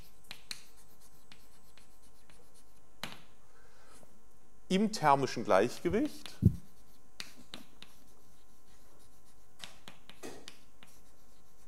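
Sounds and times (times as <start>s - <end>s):
writing on a board during a lecture: 0.0s - 2.8s, 5.8s - 11.6s
speech: 4.7s - 6.6s.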